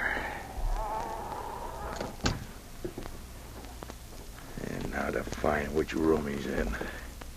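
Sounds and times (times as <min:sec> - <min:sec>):
cabin door creaking open: 0:00.1 - 0:02.5
speech: 0:05.4 - 0:07.0.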